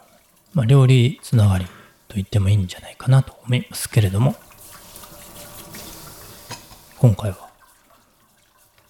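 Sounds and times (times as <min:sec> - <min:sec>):
running kitchen tap: 0:00.0 - 0:08.8
speech: 0:00.6 - 0:04.4, 0:07.0 - 0:07.4
dishes clinking as they are washed: 0:05.6 - 0:07.0.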